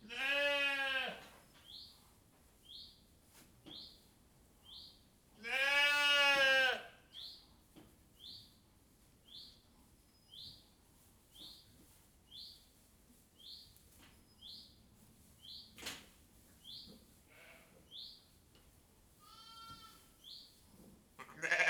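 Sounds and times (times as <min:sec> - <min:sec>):
sheep bleating in a sheepfold with straw: 0:00.0 - 0:01.2, 0:05.4 - 0:06.8, 0:19.2 - 0:20.0, 0:21.2 - 0:21.6.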